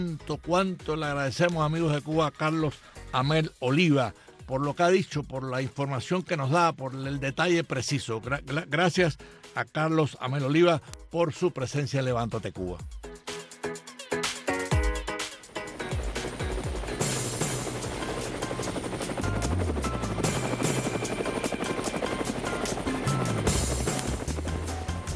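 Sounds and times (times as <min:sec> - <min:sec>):
speech: 0:00.0 - 0:13.0
helicopter: 0:15.2 - 0:25.1.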